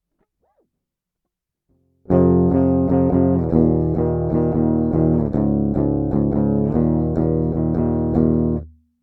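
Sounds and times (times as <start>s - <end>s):
rhythm guitar: 2.1s - 8.7s.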